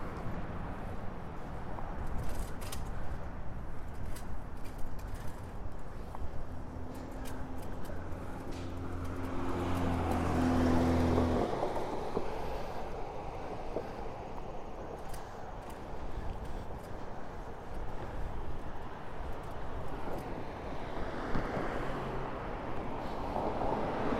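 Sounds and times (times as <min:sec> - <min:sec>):
wind and road noise on a bike ride: 0:00.0 - 0:24.1
small bike rattles and ticks: 0:01.4 - 0:10.3, 0:14.9 - 0:20.3.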